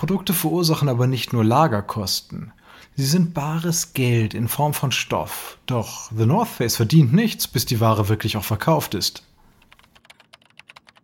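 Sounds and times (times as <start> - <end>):
speech: 0.0 - 9.3
typing numbers on a computer keyboard: 9.5 - 11.0.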